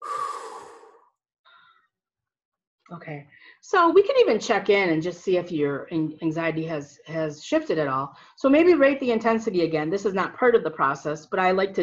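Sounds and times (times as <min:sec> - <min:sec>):
person exhaling a deep breath during an EFT tapping exercise: 0:00.0 - 0:01.8
speech: 0:02.9 - 0:11.8.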